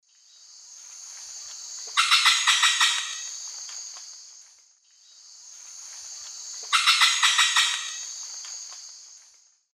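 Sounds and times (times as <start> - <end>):
Psarocolius decumanus call in South American eastern lowlands: 1.8 - 4.0, 6.4 - 8.8.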